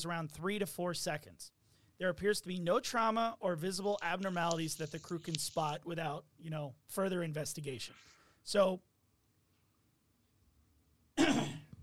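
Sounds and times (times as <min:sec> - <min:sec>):
speech: 0:00.0 - 0:08.9
single husky cough with throaty rasp: 0:11.2 - 0:11.7.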